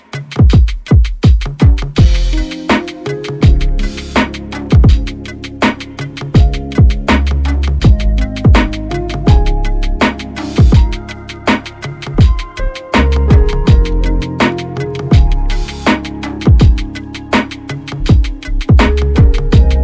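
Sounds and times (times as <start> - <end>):
lo-fi drum hit: 0.4 - 19.8.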